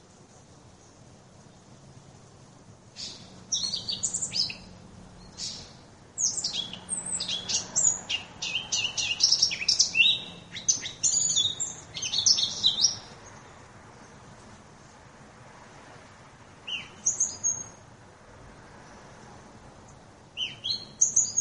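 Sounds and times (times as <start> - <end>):
Eurasian blackcap singing high warbling notes: 3.0 - 14.2, 16.6 - 17.8, 20.4 - 21.3.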